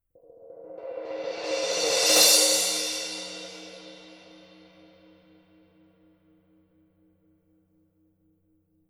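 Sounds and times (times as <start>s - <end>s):
Paiste Color Sound 900 Black crash cymbal: 0.2s - 5.5s.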